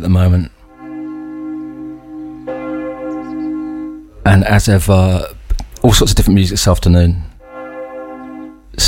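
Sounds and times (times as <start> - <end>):
speech: 0.0 - 0.6, 4.2 - 7.3
church bells ringing: 0.6 - 5.2, 7.4 - 8.8.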